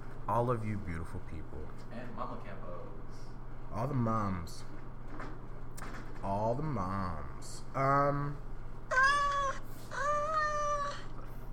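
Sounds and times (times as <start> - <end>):
low hum: 0.0 - 11.5
speech: 0.3 - 8.5
cat meowing: 8.9 - 11.3.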